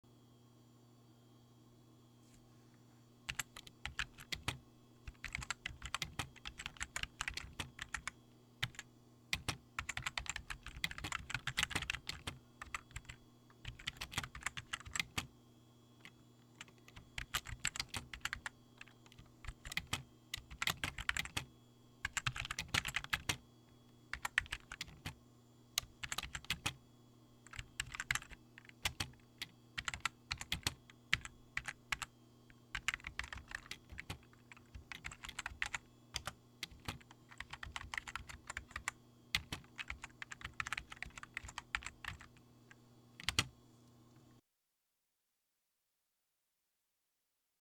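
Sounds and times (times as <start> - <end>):
medium typing: 3.3 - 8.8, 9.4 - 15.3, 16.0 - 21.5, 22.1 - 23.4, 24.1 - 25.2, 25.8 - 26.8, 27.5 - 32.1, 32.8 - 42.4, 43.2 - 43.5.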